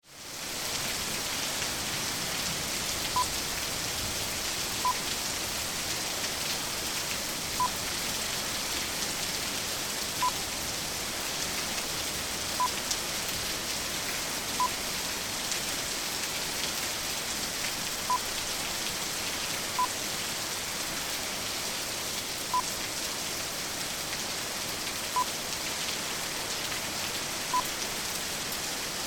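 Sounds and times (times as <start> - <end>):
heavy rain: 0.0 - 29.0.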